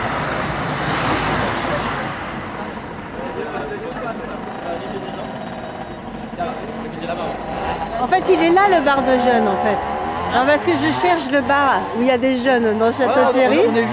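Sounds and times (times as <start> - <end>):
road traffic with cars passing: 0.0 - 13.9
speech: 8.2 - 13.9.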